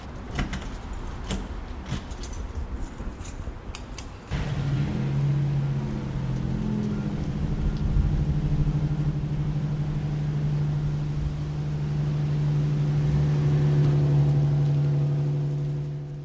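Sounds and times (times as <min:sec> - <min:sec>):
university paratransit bus engine rumbling and idling: 0:00.0 - 0:16.2
rattling clinking noise: 0:00.3 - 0:04.4.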